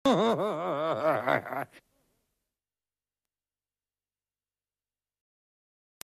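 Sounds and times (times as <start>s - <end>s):
evil laugh: 0.0s - 1.8s.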